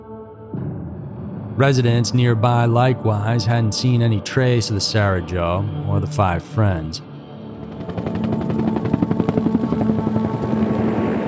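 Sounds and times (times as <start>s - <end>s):
speech: 1.6s - 7.1s
loud helicopter engine drone: 1.6s - 11.2s
helicopter rotor thumping: 7.4s - 11.2s.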